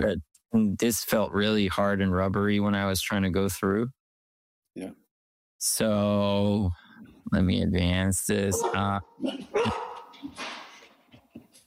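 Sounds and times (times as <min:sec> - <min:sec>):
speech: 0:00.0 - 0:04.0, 0:04.8 - 0:05.0, 0:05.6 - 0:10.6
several dogs barking: 0:08.5 - 0:10.2
dogs yipping: 0:08.6 - 0:10.4.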